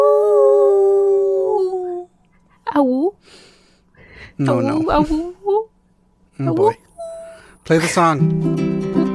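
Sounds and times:
person imitating a wolf howl: 0.0s - 2.1s, 6.6s - 7.5s
speech: 2.8s - 3.5s, 4.2s - 5.4s, 6.4s - 6.8s, 7.7s - 9.0s.

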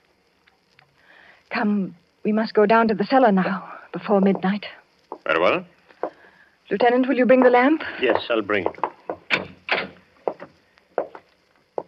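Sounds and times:
speech: 1.5s - 5.7s, 6.7s - 8.8s
unlocked wooden door being opened with clunks and rattles: 8.7s - 10.5s.

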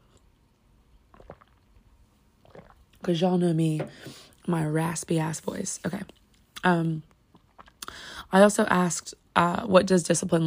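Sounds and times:
quick soft slurping sip of tea: 1.1s - 1.7s, 2.4s - 2.9s
speech: 3.0s - 7.1s, 8.3s - 10.4s.

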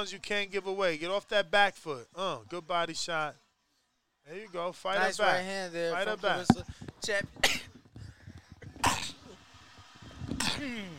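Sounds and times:
speech: 0.0s - 3.4s, 4.2s - 7.6s, 10.6s - 10.9s
sharp explosive sneezes: 8.7s - 9.4s, 10.4s - 10.9s.

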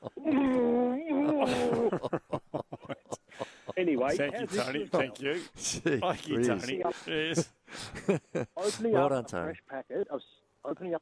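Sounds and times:
laughter: 0.0s - 9.2s
person imitating a muffled frustrated moan of a gagged captive: 0.2s - 2.0s
speech: 4.0s - 10.9s.

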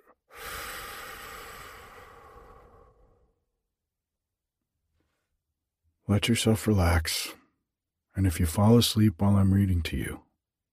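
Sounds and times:
deep breath in and out: 0.0s - 3.7s
speech: 6.1s - 7.4s, 8.2s - 10.2s.

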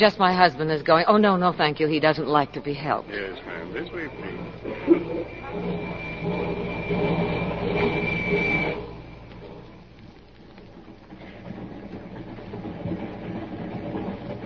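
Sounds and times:
speech: 0.0s - 8.6s
passenger train running out of Glendale: 0.0s - 9.8s.

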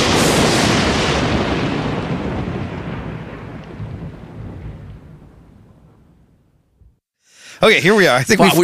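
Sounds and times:
loud crack of thunder rolling away: 0.0s - 6.9s
speech: 7.6s - 8.6s.

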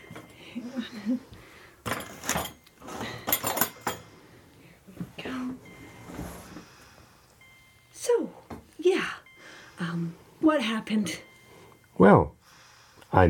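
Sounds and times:
speech: 0.8s - 1.4s, 10.0s - 11.3s, 12.0s - 12.4s
dishes and cutlery clattering on a dinner tray being moved: 1.8s - 4.1s.

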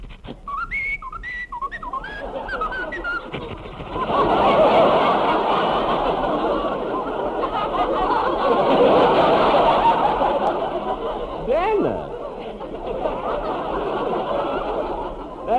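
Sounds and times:
person whistling a tune: 0.5s - 3.4s
crowd laughing and applauding: 2.0s - 15.5s.

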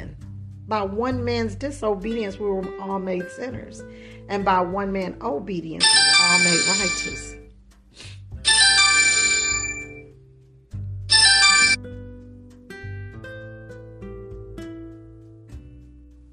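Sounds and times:
speech: 0.7s - 7.4s
phone ringtone: 5.8s - 7.4s, 8.4s - 10.1s, 11.1s - 11.8s.

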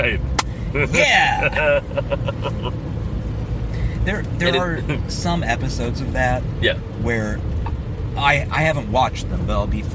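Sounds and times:
speech: 0.0s - 2.9s, 4.0s - 7.6s, 8.2s - 9.9s
low rumble of a moving car's interior: 0.0s - 9.9s
person exclaiming and laughing loudly in a car: 0.8s - 2.7s.

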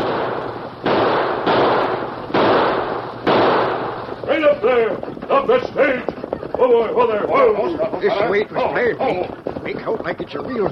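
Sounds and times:
gunshots fired into the air during a staged stagecoach holdup: 0.0s - 6.1s
speech: 4.7s - 6.1s, 6.7s - 10.6s.

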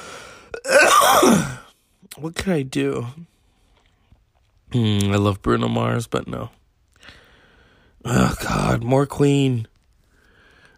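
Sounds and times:
person with a lingering cough coughing harshly: 0.5s - 1.7s
speech: 2.2s - 3.3s, 4.7s - 7.2s, 8.0s - 9.7s.

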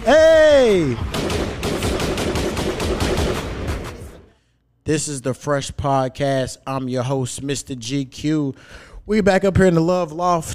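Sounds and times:
rapid bursts of gunshots: 0.4s - 4.3s
speech: 4.9s - 10.5s.

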